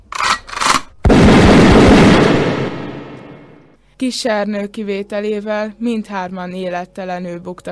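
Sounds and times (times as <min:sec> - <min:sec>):
short sharp bursts: 0:00.6 - 0:03.7
speech: 0:04.0 - 0:07.7.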